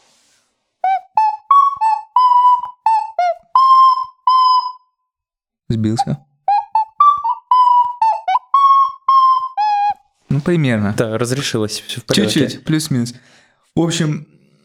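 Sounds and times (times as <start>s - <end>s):
five-hole clay ocarina from a Pskov craftsman playing a tune: 0.8s - 10.3s
speech: 5.7s - 6.3s, 10.3s - 14.3s.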